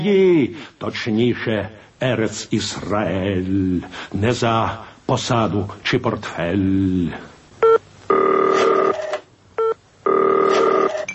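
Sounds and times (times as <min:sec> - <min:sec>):
speech: 0:00.0 - 0:07.3
telephone dialing tones in a telephone-themed sound composition: 0:07.6 - 0:11.1.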